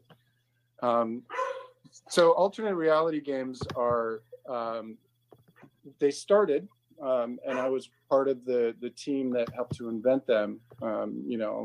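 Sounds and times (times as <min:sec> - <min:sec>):
steady low electrical hum: 0:00.0 - 0:11.6
speech: 0:00.8 - 0:05.1, 0:05.8 - 0:11.6
dog barking: 0:01.3 - 0:01.8, 0:07.5 - 0:07.7.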